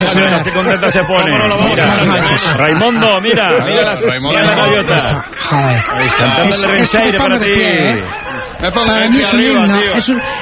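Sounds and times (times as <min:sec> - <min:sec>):
chorus of seagulls calling: 0:00.0 - 0:10.4
laughter: 0:00.0 - 0:10.4
speech: 0:00.0 - 0:10.4.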